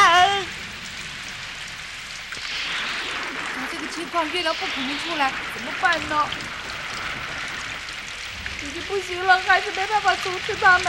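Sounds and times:
rain falling: 0:00.0 - 0:10.8
voice-like tonal sound: 0:02.6 - 0:07.9
speech: 0:03.9 - 0:06.6, 0:08.6 - 0:10.8.

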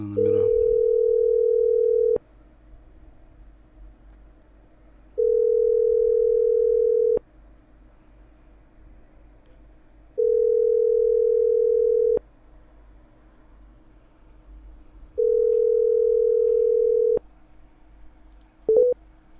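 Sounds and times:
telephone tone while dialing a number: 0:00.7 - 0:02.2, 0:05.2 - 0:07.2, 0:10.2 - 0:12.2, 0:15.2 - 0:17.2.

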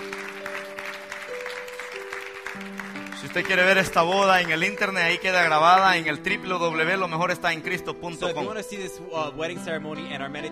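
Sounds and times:
audience applause at a wedding ceremony: 0:00.0 - 0:06.1
speech: 0:02.6 - 0:10.5.

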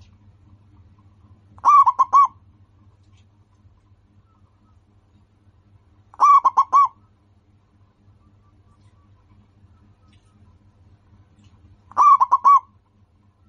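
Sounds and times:
local-strain zebra dove cooing song: 0:01.6 - 0:02.4, 0:06.2 - 0:07.0, 0:11.9 - 0:12.8.

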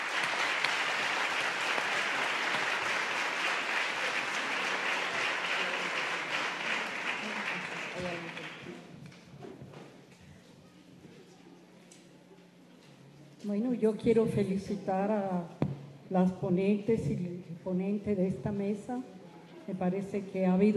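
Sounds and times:
audience applause at a conference panel session after a poem reading: 0:00.0 - 0:08.9
speech: 0:13.5 - 0:20.7.

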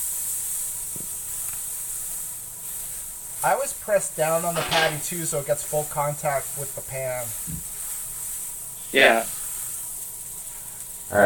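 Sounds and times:
aerosol cooking spray hissing into a pan: 0:00.0 - 0:11.2
speech: 0:03.4 - 0:07.7, 0:08.9 - 0:09.4, 0:11.1 - 0:11.2.

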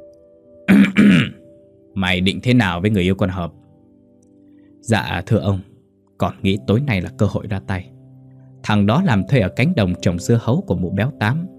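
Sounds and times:
man clearing his throat: 0:00.7 - 0:01.4
speech: 0:02.0 - 0:03.6, 0:04.8 - 0:07.9, 0:08.6 - 0:11.5.

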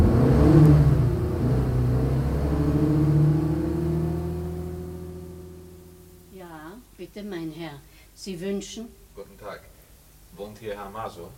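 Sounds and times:
car engine humming as it pulls away: 0:00.0 - 0:07.1
speech: 0:07.2 - 0:09.7, 0:10.4 - 0:11.3.

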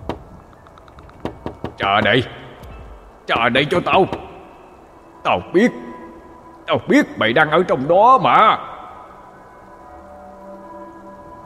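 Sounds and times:
heavy knocking on a door from outside: 0:01.2 - 0:01.8
speech: 0:01.8 - 0:02.4, 0:03.3 - 0:04.2, 0:05.2 - 0:05.8, 0:06.7 - 0:08.7.

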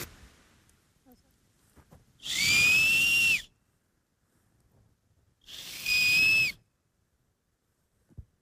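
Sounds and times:
shrill whistles blown on a maple seed held like a grass blade in a forest: 0:02.2 - 0:03.6, 0:05.4 - 0:06.7.

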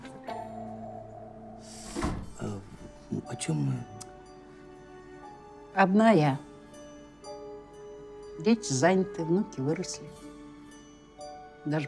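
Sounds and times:
door pushed shut: 0:00.0 - 0:00.9, 0:01.6 - 0:03.0
speech: 0:03.3 - 0:04.0, 0:05.8 - 0:06.5, 0:08.4 - 0:10.2, 0:11.6 - 0:11.8.

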